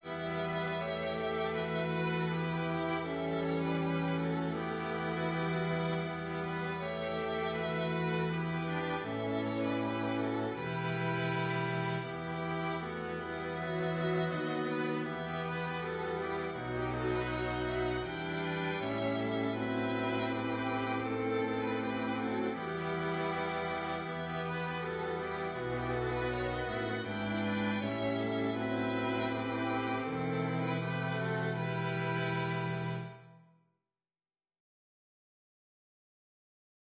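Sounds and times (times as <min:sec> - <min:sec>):
strings playing a Christmas hymn: 0:00.0 - 0:33.4.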